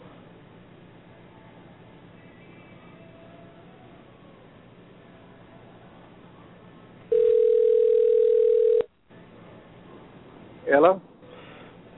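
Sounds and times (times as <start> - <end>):
loud telephone dial tone while redialing a dropped call: 7.1 - 8.9
speech: 10.8 - 11.0.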